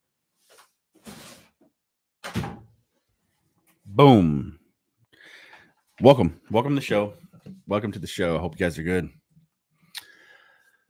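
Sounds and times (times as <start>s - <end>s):
door swinging and shutting with scrapes and creaks: 2.2s - 2.7s
speech: 4.0s - 4.6s, 6.0s - 9.2s.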